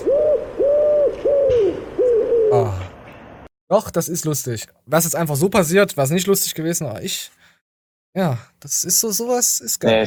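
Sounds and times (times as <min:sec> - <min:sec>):
pigeon cooing: 0:00.0 - 0:03.1
speech: 0:03.7 - 0:07.5, 0:08.2 - 0:10.0.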